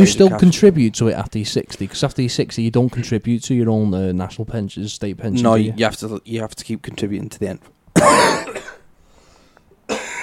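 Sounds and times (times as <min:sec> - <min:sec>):
speech: 0:00.0 - 0:08.4
loud harsh cough: 0:08.0 - 0:08.9, 0:09.9 - 0:10.2.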